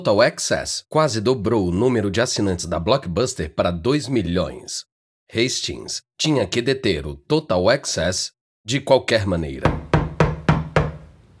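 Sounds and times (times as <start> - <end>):
speech: 0.0 - 9.8
loud sharp knocks on a door: 9.6 - 11.1.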